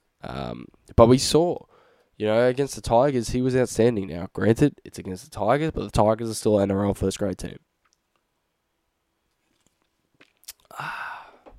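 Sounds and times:
speech: 0.2s - 7.7s
soft mouth clicks from sipping a drink: 10.2s - 11.5s.

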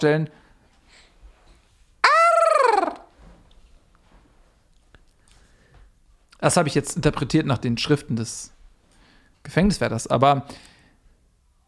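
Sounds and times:
speech: 0.0s - 0.4s, 6.4s - 8.6s, 9.4s - 10.7s
human voice imitating a strange bird-like squawk and gobble: 2.0s - 3.1s.

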